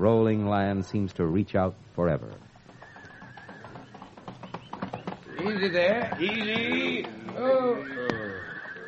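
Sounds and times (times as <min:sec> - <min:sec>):
speech: 0:00.0 - 0:02.5, 0:05.4 - 0:08.2
horse hooves clopping: 0:02.0 - 0:08.8
long wavering horse whinny: 0:02.4 - 0:08.8.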